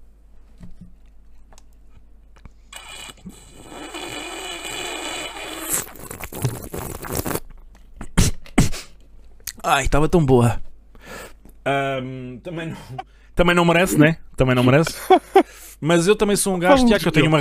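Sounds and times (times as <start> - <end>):
short sharp sucking sounds: 2.7 - 7.4
slurping a drink from a glass: 2.7 - 7.4
speech: 9.6 - 10.6, 11.6 - 17.3.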